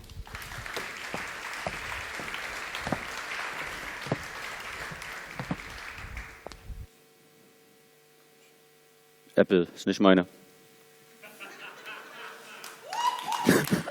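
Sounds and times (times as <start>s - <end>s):
sustained audience applause: 0.3s - 6.5s, 12.5s - 13.8s
speech: 9.4s - 10.4s
laughter: 11.2s - 13.8s.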